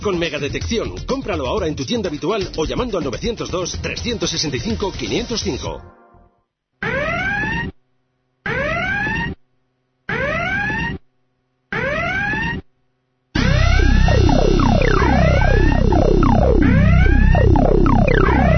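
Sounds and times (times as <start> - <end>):
speech: 0.0 - 6.0
loud electronic sirens whooping: 6.8 - 7.7, 8.5 - 9.4, 10.1 - 11.0, 11.7 - 12.6, 13.4 - 18.5.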